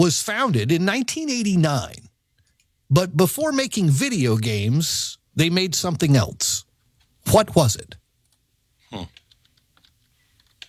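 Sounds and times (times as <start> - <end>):
speech: 0.0 - 2.0, 2.9 - 8.0, 8.9 - 9.2
grunt-like voice sound: 8.9 - 9.2
typing on a computer keyboard: 9.1 - 10.6.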